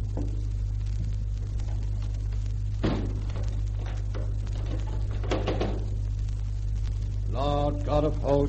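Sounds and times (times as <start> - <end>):
steady low hum: 0.0 - 8.4
door thumping shut: 2.8 - 3.5, 5.0 - 6.0
speech: 8.0 - 8.4.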